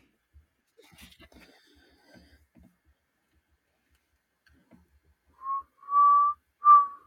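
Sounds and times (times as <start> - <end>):
person whistling a song melody: 5.4 - 7.0.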